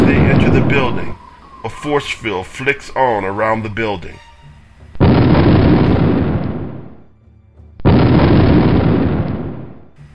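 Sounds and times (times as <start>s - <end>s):
loud booming explosions: 0.0s - 1.6s, 5.0s - 7.1s, 7.8s - 9.9s
speech: 0.9s - 4.3s.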